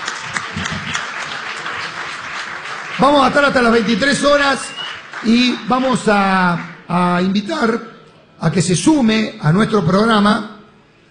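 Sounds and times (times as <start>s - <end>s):
crowd applauding: 0.0s - 7.4s
speech: 3.0s - 10.5s.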